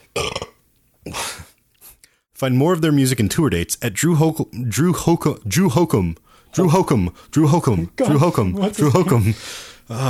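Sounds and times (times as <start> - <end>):
person burping: 0.0 - 1.4
speech: 2.4 - 10.0.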